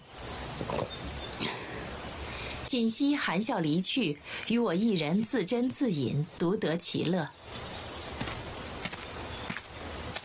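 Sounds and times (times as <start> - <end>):
constant hiss of noise: 0.0 - 10.2
speech: 2.7 - 7.6
soft light footsteps at a walking pace: 8.1 - 10.2.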